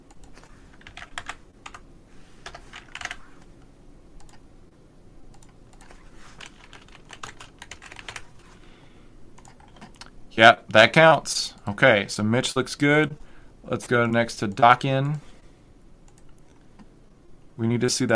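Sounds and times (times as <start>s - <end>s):
soft hiss: 0.0s - 18.1s
typing numbers on a computer keyboard: 0.1s - 1.8s, 2.4s - 3.2s, 5.3s - 8.3s, 9.4s - 10.1s
speech: 10.4s - 15.3s, 17.6s - 18.1s.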